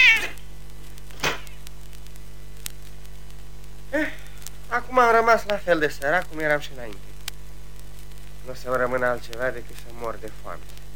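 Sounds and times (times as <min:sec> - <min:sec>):
tomcat meowing: 0:00.0 - 0:00.4
faint static: 0:00.0 - 0:10.9
steady electrical hum: 0:00.0 - 0:10.9
speech: 0:05.0 - 0:07.1, 0:08.5 - 0:10.8.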